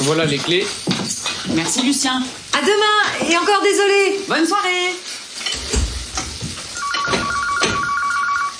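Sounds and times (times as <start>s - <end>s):
sizzling in a busy kitchen: 0.0s - 8.5s
speech: 0.1s - 5.1s
telephone ringing with electronic trill: 6.8s - 8.5s.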